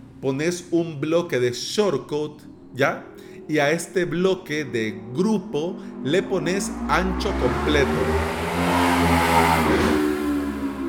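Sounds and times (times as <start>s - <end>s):
speech: 0.2s - 8.4s, 9.4s - 10.1s
motorcycle engine revving: 4.5s - 10.8s.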